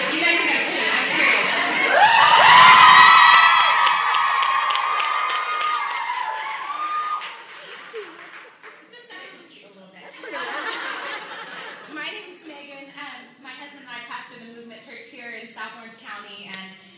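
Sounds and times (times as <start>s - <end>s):
crowd yelling and cheering with whoops: 0.0s - 8.3s
scattered clapping: 1.9s - 9.0s
laughter: 7.6s - 8.5s, 10.1s - 12.0s.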